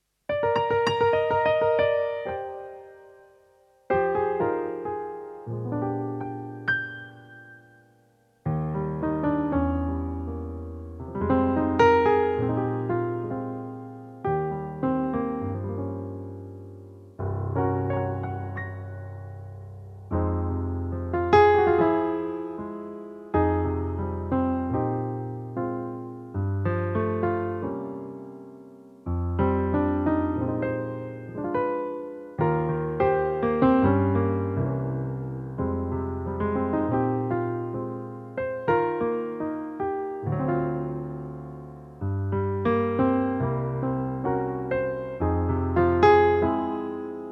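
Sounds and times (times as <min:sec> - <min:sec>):
E flat piano note: 0:00.3 - 0:47.2.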